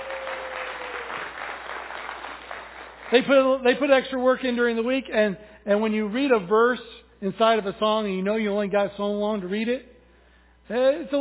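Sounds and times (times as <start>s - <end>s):
room full of people applauding: 0.0s - 3.6s
speech: 3.1s - 9.9s, 10.7s - 11.1s.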